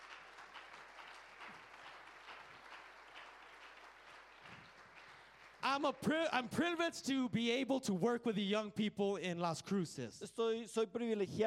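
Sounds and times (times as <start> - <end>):
crowd applauding: 0.0 - 6.6
speech: 5.7 - 11.4.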